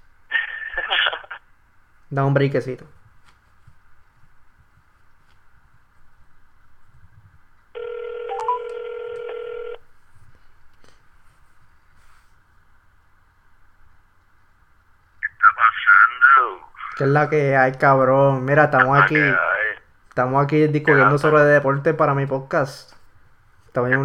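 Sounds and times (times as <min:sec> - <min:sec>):
faint low hum: 0:00.0 - 0:24.0
speech: 0:02.1 - 0:03.0, 0:17.0 - 0:19.5, 0:20.2 - 0:23.0, 0:23.7 - 0:24.0
telephone ringback tone while a call is being placed: 0:07.8 - 0:09.8.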